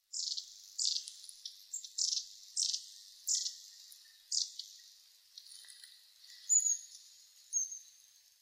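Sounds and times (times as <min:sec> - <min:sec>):
long-tailed tit: 0:00.1 - 0:04.8, 0:06.4 - 0:08.0.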